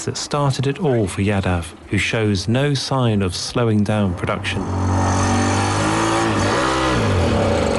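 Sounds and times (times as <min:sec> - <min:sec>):
speech: 0:00.0 - 0:05.3
small homemade car engine revving: 0:04.6 - 0:07.7.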